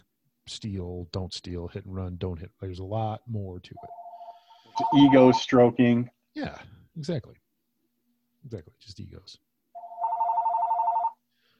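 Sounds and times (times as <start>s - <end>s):
speech: 0.5s - 4.0s, 4.8s - 7.4s, 8.4s - 9.4s
telephone bell ringing: 3.8s - 5.4s, 9.8s - 11.2s.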